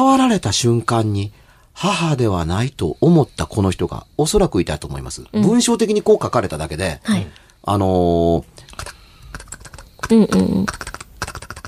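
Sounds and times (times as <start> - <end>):
speech: 0.0 - 9.0, 10.1 - 10.9
keyboard typing: 8.7 - 11.6.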